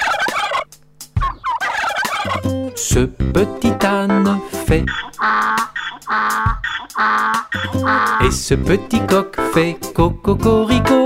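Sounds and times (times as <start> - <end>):
turkey gobbling: 0.0 - 2.7, 4.8 - 8.4
speech: 2.2 - 11.0.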